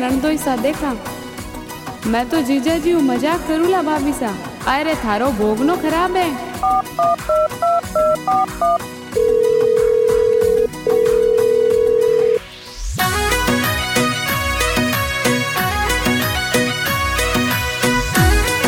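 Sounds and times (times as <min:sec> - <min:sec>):
speech: 0:00.0 - 0:01.2, 0:02.0 - 0:09.5
loud bright caller tune music with a driving beat: 0:00.9 - 0:18.6
phone dialing beeps: 0:06.6 - 0:12.4.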